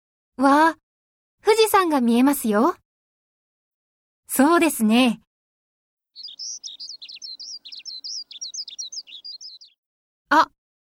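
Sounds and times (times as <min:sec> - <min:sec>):
speech: 0:00.4 - 0:00.8, 0:01.4 - 0:02.8, 0:04.3 - 0:05.2, 0:10.3 - 0:10.6
bird singing high bright chirps: 0:06.2 - 0:09.7.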